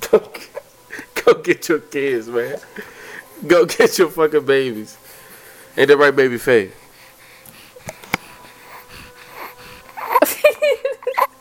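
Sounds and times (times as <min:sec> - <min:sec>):
speech: 0:00.1 - 0:00.6, 0:01.3 - 0:05.0, 0:05.8 - 0:06.8
raspy wheezy heavy breathing into the microphone: 0:02.3 - 0:03.4, 0:04.8 - 0:10.3
squeaky whimpering bursts: 0:08.3 - 0:11.3.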